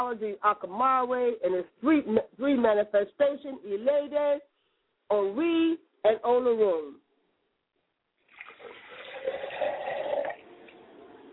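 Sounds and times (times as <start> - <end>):
speech: 0.0 - 4.5, 5.1 - 7.0
water pouring into a glass as a libation offering: 8.3 - 10.6.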